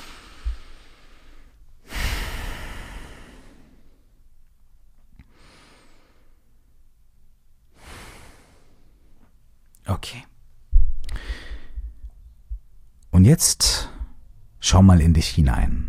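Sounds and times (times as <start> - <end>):
deep breathing in and out during a guided seated relaxation exercise: 0.0 - 4.3, 5.2 - 6.6, 7.7 - 9.3, 11.0 - 12.1
speech: 10.0 - 10.3, 13.2 - 13.9, 14.6 - 15.8.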